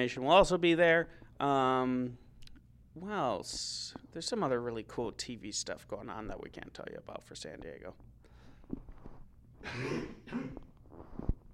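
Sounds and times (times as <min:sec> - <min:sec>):
speech: 0:00.0 - 0:02.2, 0:03.0 - 0:08.1, 0:09.6 - 0:11.3
throaty rasping coughs: 0:09.6 - 0:10.7.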